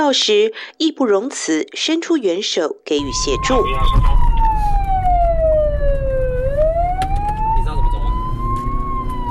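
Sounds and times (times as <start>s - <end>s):
speech: 0.1s - 4.3s
police car siren wailing in Guiren: 3.0s - 9.3s
rumble of road and engine noise: 3.0s - 9.3s.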